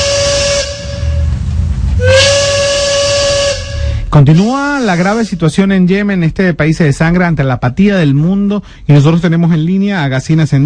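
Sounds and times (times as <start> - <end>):
steam train whistle: 0.0 - 1.4, 2.0 - 4.1
hissing steam: 0.0 - 5.4
low rumbling of a departing train: 0.0 - 9.8
speech: 4.2 - 10.6.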